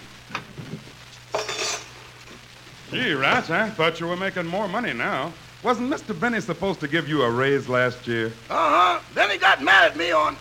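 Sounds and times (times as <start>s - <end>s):
low steady hum: 0.0s - 10.3s
silverware clattering as it is put away: 1.3s - 2.0s
speech: 2.9s - 10.3s.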